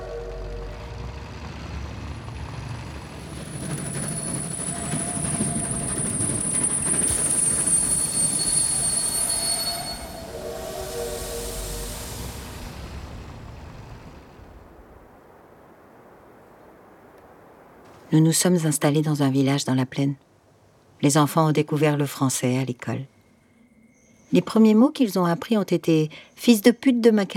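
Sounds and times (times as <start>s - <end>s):
train wheels squealing with thin high-pitched metallic tones: 0.0s - 14.8s
train rumbling at a railway station: 0.0s - 15.2s
speech: 18.1s - 20.3s, 21.0s - 23.2s, 24.3s - 27.3s.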